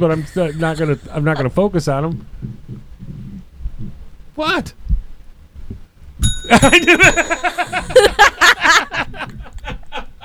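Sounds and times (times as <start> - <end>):
rapid rhythmic laughter: 0.0 - 2.0, 6.5 - 10.2
speech: 0.0 - 2.7, 4.4 - 4.8, 6.5 - 9.3
small bell ringing with lingering metallic tone: 6.2 - 8.7.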